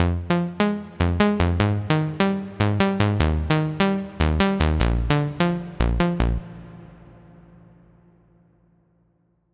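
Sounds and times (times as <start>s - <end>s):
future bass music: 0.0s - 6.4s.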